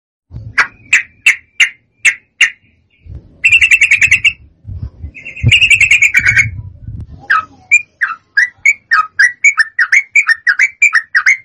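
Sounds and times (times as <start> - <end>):
Yellow-vented bulbul song: 0.4 - 11.4
low rumbling: 2.6 - 8.0.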